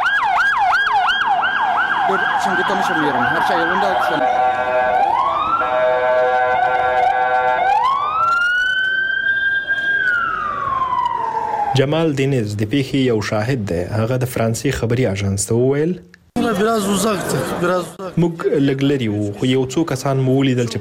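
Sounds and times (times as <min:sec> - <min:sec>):
ambulance and police car siren fast loud warbling yelp: 0:00.0 - 0:12.0
speech: 0:02.1 - 0:05.1, 0:11.8 - 0:20.7
laughter: 0:16.4 - 0:19.8.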